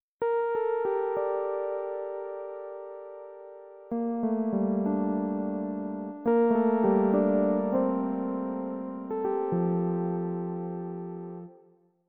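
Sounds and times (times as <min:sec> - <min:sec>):
Pianet electric piano: 0:00.2 - 0:11.7.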